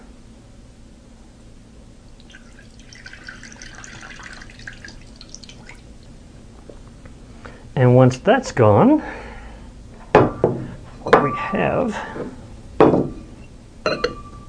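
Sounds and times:
low hum: 0.0 - 14.4
rinse water poured off homemade butter trickling and dripping: 2.2 - 6.2
speech: 7.8 - 9.2, 11.6 - 12.4.

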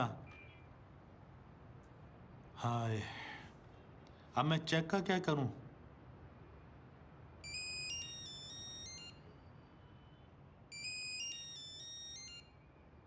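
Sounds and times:
speech: 0.0 - 0.2, 2.6 - 3.2, 4.4 - 5.6
low hum: 0.0 - 13.0
phone ringtone bright electronic melody: 7.4 - 9.3, 10.7 - 12.7.

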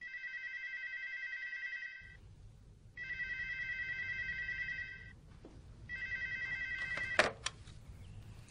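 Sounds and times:
telephone ringing with electronic ring tones: 0.0 - 2.2, 3.0 - 5.2, 5.9 - 7.4.

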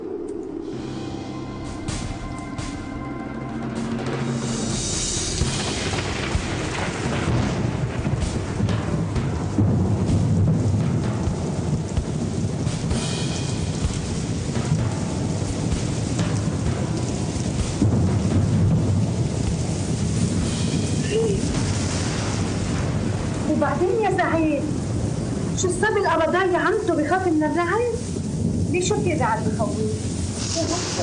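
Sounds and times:
deep rolling thunder: 0.0 - 31.0
heavy rain: 0.0 - 31.0.

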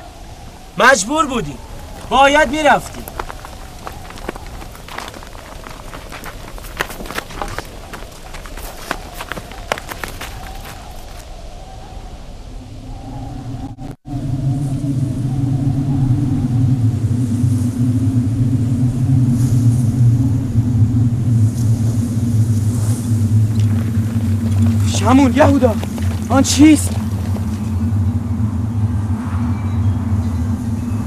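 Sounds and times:
storm rumbling: 0.0 - 31.0
speech: 0.8 - 3.2, 25.1 - 26.9.

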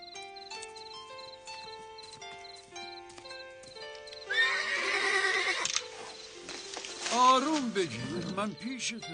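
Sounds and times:
soft melodic music: 0.0 - 9.1
exhausted swift horse whinnying after a hard run: 4.3 - 6.2
speech: 7.3 - 9.1.

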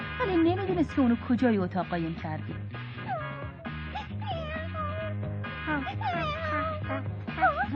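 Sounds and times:
music: 0.0 - 7.7
speech: 0.2 - 2.8, 5.7 - 7.7
cat meowing: 3.0 - 5.1, 5.7 - 7.7.

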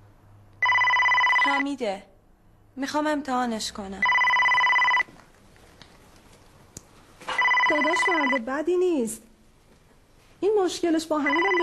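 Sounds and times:
telephone with bright electronic tonal ring: 0.6 - 1.7, 4.0 - 5.2, 7.3 - 8.5, 11.2 - 11.6
speech: 1.5 - 2.1, 2.8 - 4.2, 7.7 - 9.3, 10.4 - 11.6.

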